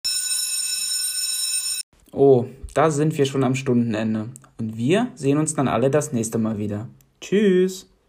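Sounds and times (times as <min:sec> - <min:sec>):
electric school bell ringing at end of lesson: 0:00.0 - 0:01.8
speech: 0:02.1 - 0:07.9.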